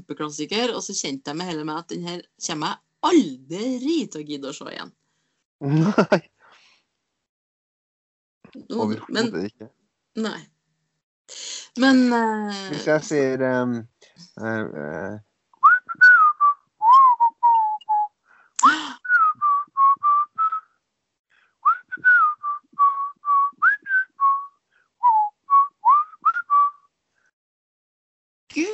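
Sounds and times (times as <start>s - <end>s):
speech: 0.1s - 5.0s, 5.6s - 6.3s, 8.5s - 10.5s, 11.3s - 15.3s
laughter: 5.6s - 6.2s, 8.8s - 9.6s, 12.9s - 13.8s, 14.4s - 15.2s
person whistling a tune: 15.6s - 18.1s, 18.7s - 20.6s, 21.6s - 26.8s.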